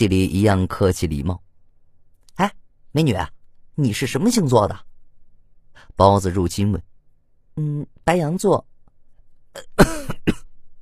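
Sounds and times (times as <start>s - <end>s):
speech: 0.0s - 1.4s, 2.4s - 4.9s, 5.8s - 6.9s, 7.6s - 8.7s, 9.6s - 10.1s
person coughing with throat-clearing rasp: 9.6s - 10.5s.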